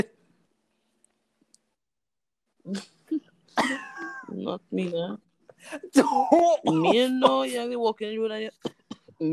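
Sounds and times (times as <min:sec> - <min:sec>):
speech: 0:02.7 - 0:03.0, 0:04.4 - 0:09.3
person coughing: 0:03.6 - 0:04.3, 0:05.8 - 0:07.6.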